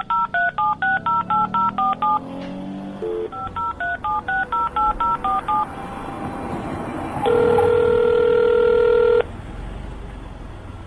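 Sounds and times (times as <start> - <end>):
touch-tone keypad beeps as a telephone number is dialed to call for an ambulance: 0.0 - 2.3, 3.0 - 5.7, 7.2 - 9.2.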